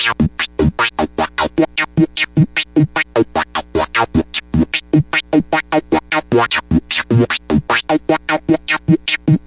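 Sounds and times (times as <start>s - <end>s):
heavily tweaked synth loop: 0.0s - 9.4s.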